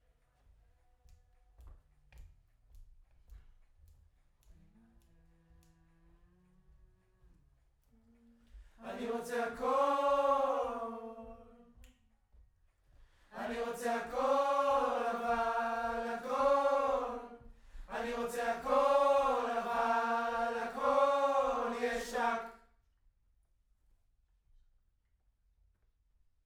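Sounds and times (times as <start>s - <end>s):
distant choir: 8.8s - 11.8s, 13.3s - 22.6s.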